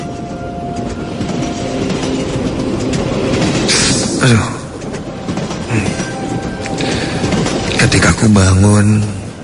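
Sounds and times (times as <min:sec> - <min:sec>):
passenger train slowing down: 0:00.0 - 0:09.4
passenger train wheels clattering rhythmically: 0:00.0 - 0:09.4
speech: 0:04.2 - 0:04.6, 0:08.2 - 0:09.2.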